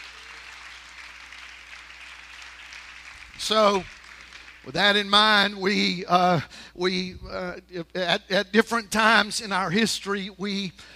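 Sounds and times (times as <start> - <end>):
audience applauding: 0.0 - 4.8
speech: 3.4 - 4.0, 4.6 - 10.9.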